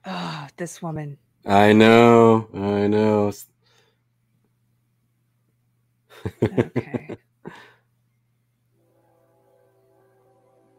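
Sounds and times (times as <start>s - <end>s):
speech: 0.6s - 3.5s, 6.2s - 7.6s
laughter: 6.2s - 7.2s
sustained multi-tone train horn: 8.8s - 10.7s.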